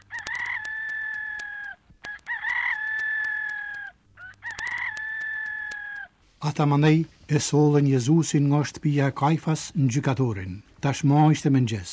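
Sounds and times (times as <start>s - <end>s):
rooster crowing: 0.0s - 6.2s
speech: 6.4s - 11.9s.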